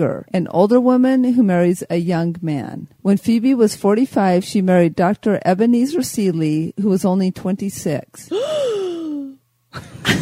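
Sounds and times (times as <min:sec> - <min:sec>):
speech: 0:00.0 - 0:08.9, 0:09.7 - 0:10.2
person imitating shocked townspeople gasping: 0:08.3 - 0:09.4.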